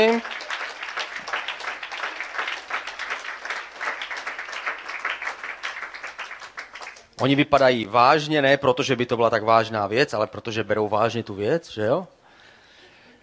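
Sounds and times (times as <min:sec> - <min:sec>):
speech: 0:00.0 - 0:00.3, 0:07.2 - 0:12.2
audience applause welcoming a team onto the stage: 0:00.0 - 0:07.1.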